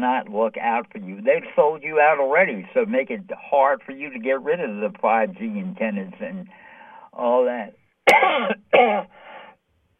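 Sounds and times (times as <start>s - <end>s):
speech: 0.0s - 6.6s, 7.2s - 9.2s
raspy throat clearing with a cough: 8.1s - 9.2s.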